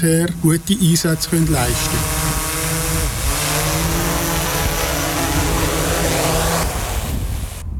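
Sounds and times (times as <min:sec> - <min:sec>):
speech: 0:00.0 - 0:02.4
landing drone's propeller whine: 0:00.0 - 0:07.6.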